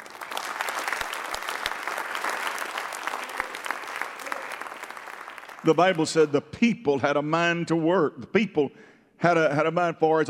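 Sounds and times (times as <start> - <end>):
audience applauding: 0.0 - 6.2
speech: 5.6 - 10.2.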